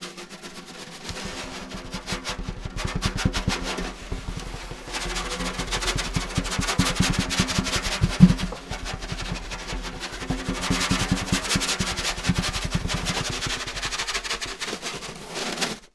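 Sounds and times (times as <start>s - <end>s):
snare drum: 0.5s - 15.7s.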